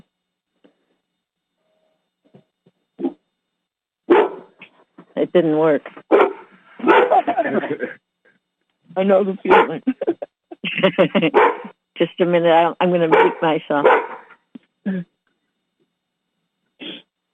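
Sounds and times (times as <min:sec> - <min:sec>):
dog barking: 0:04.1 - 0:04.5, 0:06.1 - 0:07.4, 0:09.5 - 0:09.9, 0:11.3 - 0:11.7, 0:13.1 - 0:14.4
speech: 0:05.2 - 0:06.0, 0:09.0 - 0:09.9, 0:10.8 - 0:14.0
laughter: 0:06.8 - 0:08.0, 0:09.5 - 0:11.7.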